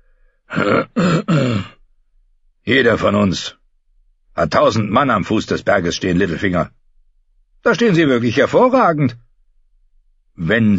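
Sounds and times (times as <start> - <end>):
gruff throat clearing: 0.5 - 1.8
speech: 0.6 - 1.3, 2.7 - 3.6, 4.4 - 6.8, 7.6 - 9.2, 10.4 - 10.7.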